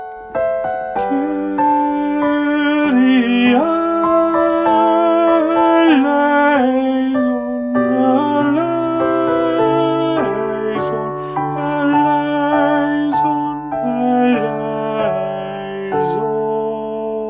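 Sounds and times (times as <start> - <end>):
tenor singing: 0.6 - 17.2.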